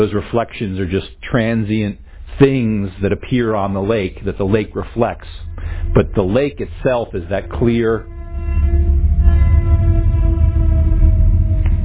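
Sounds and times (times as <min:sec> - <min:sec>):
speech: 0:00.0 - 0:08.8
heavy low rumble of a passing train: 0:02.0 - 0:11.8
train horn blaring: 0:04.8 - 0:11.8.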